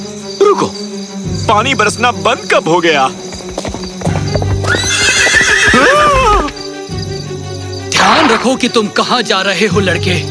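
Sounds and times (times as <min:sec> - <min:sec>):
speech: 0:01.5 - 0:03.3, 0:08.3 - 0:10.2
hooves clopping as a horse is ridden on a road: 0:01.6 - 0:07.1
horse whinnying: 0:04.3 - 0:06.6.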